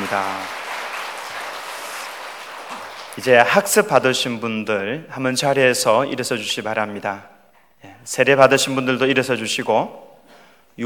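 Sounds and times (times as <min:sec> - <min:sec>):
church audience applauding newly baptized members: 0:00.0 - 0:03.8
speech: 0:00.1 - 0:00.6, 0:03.2 - 0:07.4, 0:08.0 - 0:10.1.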